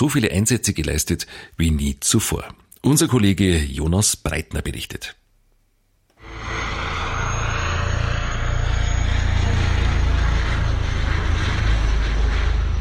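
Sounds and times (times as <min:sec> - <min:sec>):
speech: 0:00.0 - 0:05.2
aircraft engine roar with heavy low-end rumble: 0:06.2 - 0:12.7.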